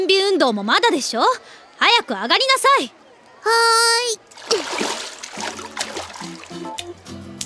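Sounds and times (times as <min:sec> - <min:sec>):
speech: 0:00.0 - 0:05.0
water sloshing and splashing in a swimming pool: 0:04.2 - 0:07.0.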